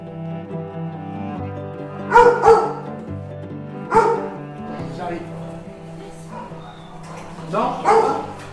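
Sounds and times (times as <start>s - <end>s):
several dogs barking with reverberation at an animal shelter: 2.0s - 3.0s, 3.9s - 4.5s, 6.2s - 8.5s.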